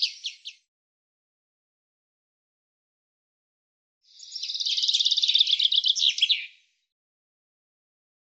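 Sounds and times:
common chaffinch song: 0:00.0 - 0:00.7, 0:04.0 - 0:06.9.

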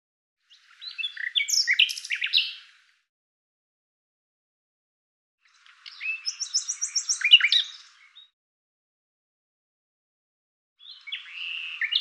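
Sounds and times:
Common Nightingale singing: 0:00.4 - 0:02.9, 0:05.4 - 0:08.3, 0:10.8 - 0:11.9.

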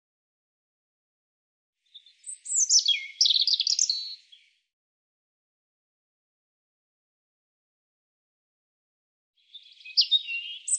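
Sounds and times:
European robin singing: 0:01.8 - 0:04.6, 0:09.4 - 0:10.7.

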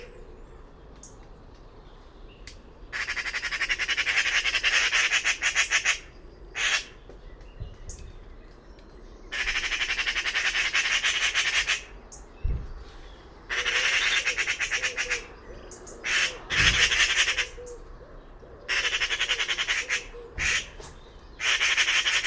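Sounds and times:
bird squawking: 0:02.9 - 0:07.0, 0:09.3 - 0:12.0, 0:13.5 - 0:17.8, 0:18.7 - 0:22.2.

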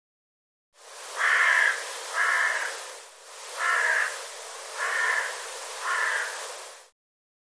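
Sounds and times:
background hiss: 0:00.8 - 0:06.9
bird giving harsh hoarse cawing calls: 0:00.9 - 0:06.9.

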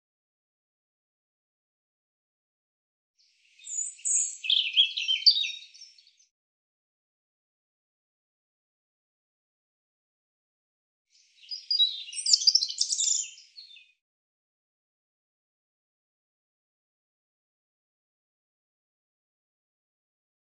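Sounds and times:
European robin singing high jumbled tinkling warbled phrases: 0:03.5 - 0:06.3, 0:11.2 - 0:14.0.

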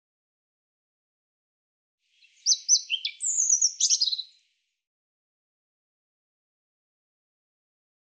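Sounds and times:
European robin singing: 0:02.2 - 0:04.4.

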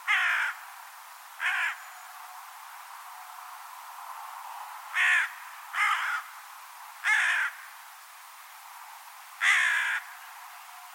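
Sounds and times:
steady background hiss: 0:00.0 - 0:10.9
bird giving harsh raspy crow-like caws: 0:00.1 - 0:00.6, 0:01.4 - 0:01.8, 0:04.9 - 0:06.3, 0:07.0 - 0:07.7, 0:09.4 - 0:10.2.

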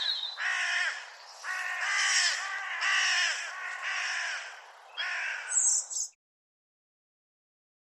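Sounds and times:
bird cawing: 0:00.0 - 0:06.1.

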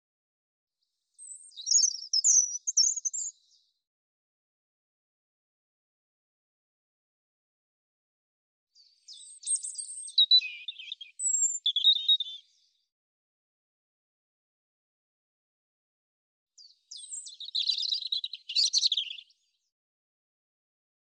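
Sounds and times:
European robin singing twittering high notes and thin whistles: 0:01.2 - 0:03.7, 0:08.8 - 0:12.7, 0:16.6 - 0:19.5.

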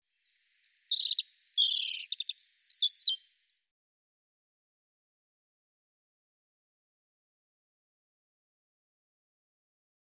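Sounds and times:
European robin singing high whistles, trills and twitters: 0:00.2 - 0:03.5.

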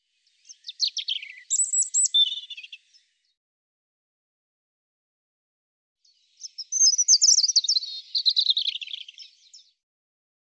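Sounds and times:
European robin song: 0:00.1 - 0:03.4, 0:06.0 - 0:09.8.

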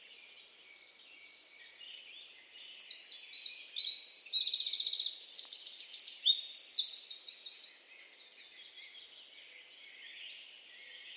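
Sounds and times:
bird singing high-pitched sharp whistles and fast trills: 0:02.7 - 0:07.8.

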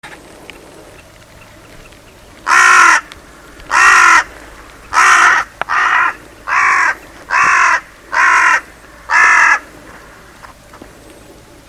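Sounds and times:
bird giving harsh raspy caws: 0:01.4 - 0:10.5.

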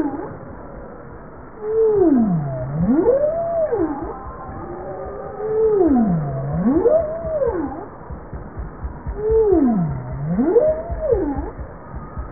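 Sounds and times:
bowhead whale calls: 0:01.6 - 0:08.3, 0:09.0 - 0:11.6.

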